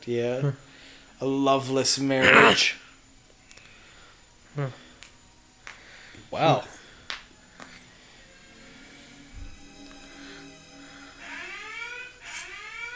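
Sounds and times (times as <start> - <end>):
speech: 0.0 - 2.8, 4.6 - 4.8, 6.3 - 6.7
electronic alarm ringing: 9.6 - 12.9.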